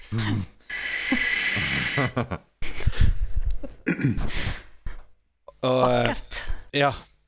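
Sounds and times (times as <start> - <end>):
laughter: 0.1 - 0.5
speech: 0.1 - 0.5, 1.1 - 2.5, 3.9 - 4.7, 5.6 - 7.1
man's breathy wheezing failed attempt at whistling: 0.1 - 0.6.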